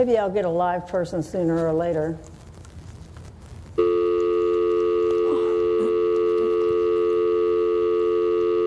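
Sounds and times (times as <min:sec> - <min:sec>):
speech: 0:00.0 - 0:02.4
telephone dial tone: 0:03.8 - 0:08.6.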